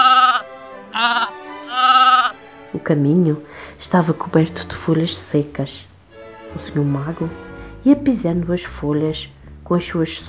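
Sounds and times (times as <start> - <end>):
sheep bleating from a flock returning from pasture: 0.0 - 2.4
speech: 2.8 - 5.9, 6.5 - 10.2.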